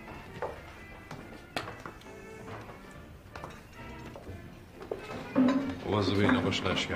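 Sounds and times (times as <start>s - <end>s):
footsteps coming down a flight of stairs into a café: 0.0s - 6.5s
chairs being moved around by workers: 0.0s - 6.9s
speech: 5.4s - 6.9s.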